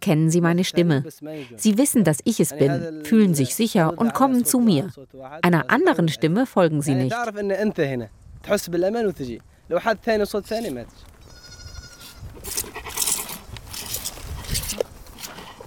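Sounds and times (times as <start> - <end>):
speech: 0.0 - 11.1
farmyard commotion: 10.6 - 15.6
goats bleating while being milked: 11.2 - 12.8
rustling and shuffling in a farmyard: 11.9 - 15.6.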